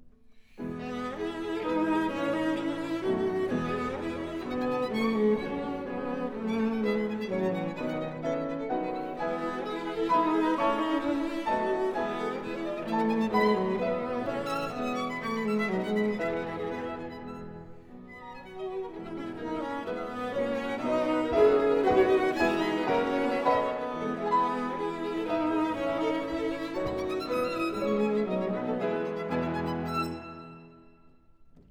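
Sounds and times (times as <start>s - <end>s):
cello in a piano trio: 0.0s - 31.7s
piano in a piano trio: 0.0s - 31.7s
violin in a piano trio: 0.0s - 31.7s.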